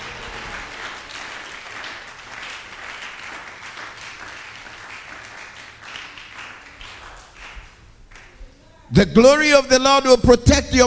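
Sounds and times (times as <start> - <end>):
audience clapping: 0.0 - 8.4
speech: 8.9 - 10.8.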